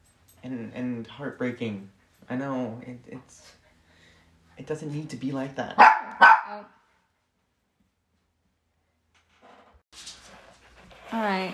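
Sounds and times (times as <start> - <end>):
speech: 0.4 - 3.6, 4.6 - 6.8, 11.1 - 11.5
dog barking: 5.8 - 6.7.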